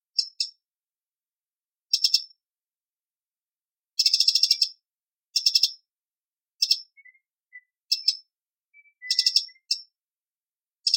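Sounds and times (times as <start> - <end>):
wren alarm call: 1.9 - 2.4, 4.0 - 5.9, 6.6 - 10.0.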